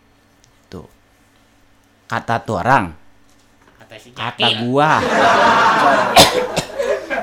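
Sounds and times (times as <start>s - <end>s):
speech: 0.7s - 1.0s, 2.1s - 3.0s, 4.0s - 6.6s
laughter: 4.3s - 7.2s
person coughing sharply: 6.1s - 7.0s.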